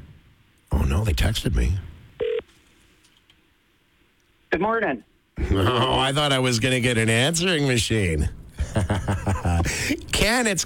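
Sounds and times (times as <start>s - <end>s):
speech: 0.9s - 1.9s, 4.5s - 10.6s
electronic telephone touch tone from a number being dialed: 2.2s - 2.4s
laughter: 8.6s - 10.0s.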